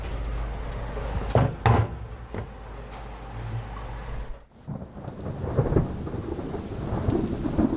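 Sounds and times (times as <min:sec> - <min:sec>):
steady rain: 0:00.0 - 0:01.3, 0:02.0 - 0:07.7
deep thunder rumbling from an approaching storm: 0:00.0 - 0:07.7
sharp thunder cracks: 0:04.6 - 0:07.7.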